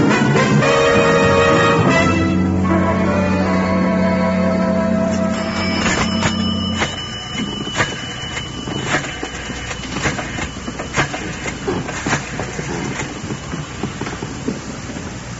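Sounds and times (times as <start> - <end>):
low idling train engine in a train depot: 0.0 - 15.3
steady rumbling train depot ambience: 0.0 - 15.3
metallic clanks and knocks in a train depot: 5.1 - 13.5.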